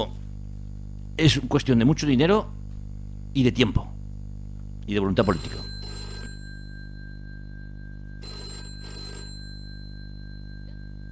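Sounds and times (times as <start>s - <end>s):
low electrical hum: 0.0s - 11.1s
speech: 1.2s - 2.6s, 3.4s - 3.9s, 4.9s - 5.7s
telephone bell ringing: 5.2s - 11.1s.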